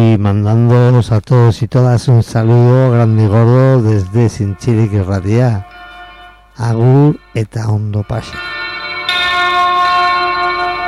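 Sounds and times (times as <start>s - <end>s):
speech: 0.0s - 5.8s, 6.6s - 8.6s
bright resonant bell ringing: 2.4s - 10.8s.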